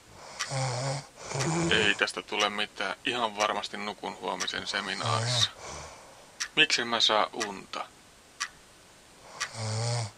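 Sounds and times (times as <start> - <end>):
loud rumbling snore: 0.2 - 2.1, 5.0 - 6.0, 9.3 - 10.1
speech: 0.5 - 0.8, 1.4 - 5.7, 6.6 - 8.0, 9.6 - 10.1.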